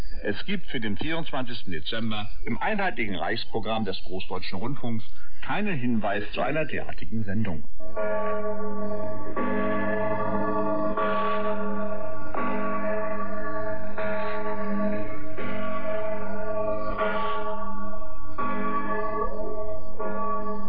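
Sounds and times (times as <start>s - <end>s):
speech: 0.2s - 10.7s
church bells ringing in a full peal: 7.8s - 20.6s.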